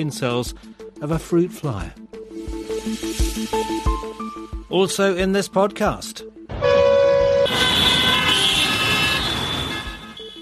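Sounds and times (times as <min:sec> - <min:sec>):
speech: 0:00.0 - 0:04.1, 0:04.7 - 0:06.8
loud car horns honking in city traffic: 0:06.5 - 0:10.3.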